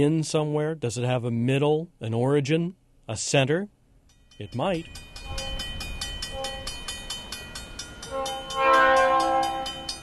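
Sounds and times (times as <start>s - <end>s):
speech: 0.0s - 3.8s, 4.4s - 5.5s
train wheels clattering past a railroad crossing in Philo Illinois: 4.1s - 10.0s
train horn blaring: 5.2s - 6.9s, 8.0s - 10.0s.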